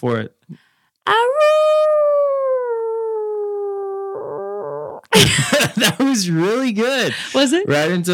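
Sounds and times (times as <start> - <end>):
speech: 0.0 - 2.4, 5.1 - 8.1
person imitating a wolf howl: 1.1 - 5.0
laughter: 5.2 - 6.2.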